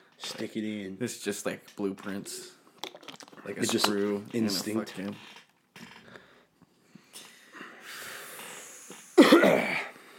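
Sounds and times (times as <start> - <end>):
speech: 0.3 - 2.6, 3.4 - 5.4
person coughing: 9.2 - 9.9.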